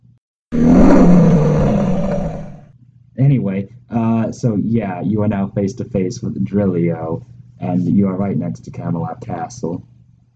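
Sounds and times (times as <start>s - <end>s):
person imitating a lion's roar with a raspy growl: 0.6s - 2.6s
speech: 4.3s - 9.9s.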